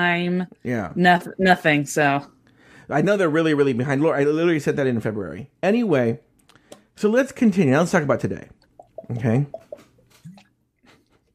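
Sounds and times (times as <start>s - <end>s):
speech: 0.0s - 6.3s, 7.0s - 9.6s
gulping water while drinking: 8.4s - 11.3s.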